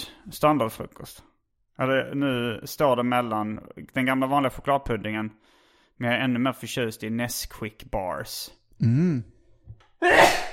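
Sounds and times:
speech: 0:00.2 - 0:09.3, 0:10.0 - 0:10.4
sneeze: 0:10.0 - 0:10.5.

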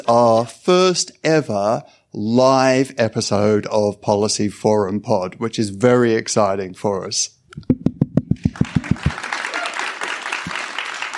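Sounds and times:
speech: 0:00.1 - 0:07.8
live audience clapping in a synchronized rhythm: 0:07.6 - 0:11.1
live audience applause: 0:08.4 - 0:11.1.

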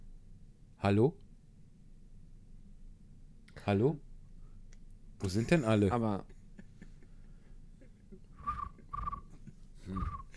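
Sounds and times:
speech: 0:00.8 - 0:01.2, 0:03.7 - 0:04.1, 0:05.2 - 0:06.3
voice imitating cricket chirping: 0:09.9 - 0:10.3.

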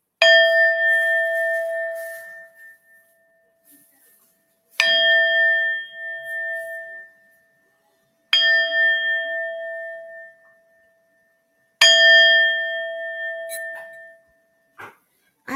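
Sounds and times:
Tibetan singing bowl struck and ringing: 0:00.2 - 0:03.5, 0:04.8 - 0:07.6, 0:08.3 - 0:14.7.

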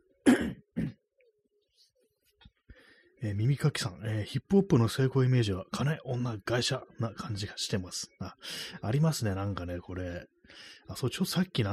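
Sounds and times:
person clearing throat: 0:00.2 - 0:01.1
speech: 0:03.2 - 0:11.7.

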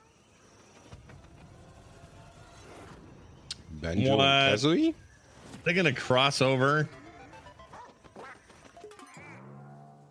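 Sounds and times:
speech: 0:03.8 - 0:05.0, 0:05.6 - 0:07.0
Nintendo video game duck quacking: 0:07.0 - 0:10.0.

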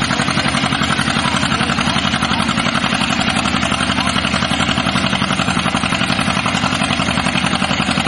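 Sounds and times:
old John Deere tractor engine chugging: 0:00.0 - 0:08.0.

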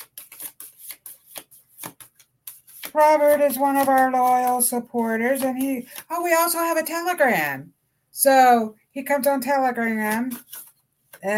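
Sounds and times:
cards sliding and rustling as one is drawn from a deck: 0:00.0 - 0:06.6, 0:09.8 - 0:11.3
speech: 0:03.0 - 0:10.6.

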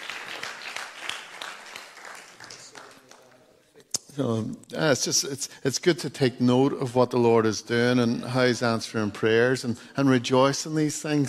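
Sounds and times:
crowd applauding: 0:00.0 - 0:03.5
speech: 0:04.2 - 0:11.2.

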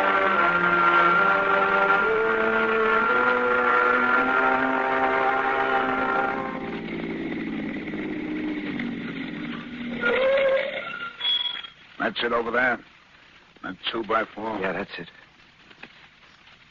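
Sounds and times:
car engine droning as the car drives along: 0:00.0 - 0:10.1
speech: 0:12.2 - 0:12.9, 0:13.9 - 0:15.2.

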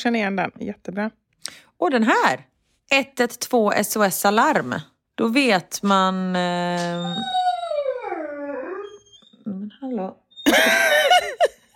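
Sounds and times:
speech: 0:00.0 - 0:07.5, 0:09.8 - 0:11.0
dog howling and whimpering: 0:06.7 - 0:11.2
laughter: 0:10.5 - 0:11.7.

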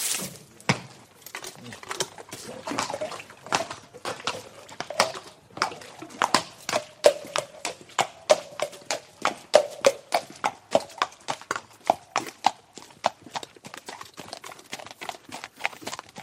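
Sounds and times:
horse hooves clip-clopping on a hard surface: 0:00.1 - 0:16.2.

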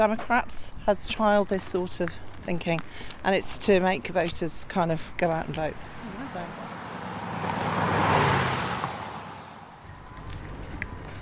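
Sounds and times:
speech: 0:00.0 - 0:06.7
steady traffic hum: 0:00.0 - 0:11.2
large bus engine rumbling past on the road: 0:05.2 - 0:11.2.

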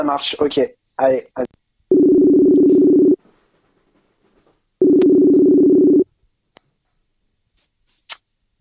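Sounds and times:
speech: 0:00.0 - 0:01.6
phone line ringing tones as a phone call is placed: 0:01.9 - 0:03.2, 0:04.8 - 0:06.1.

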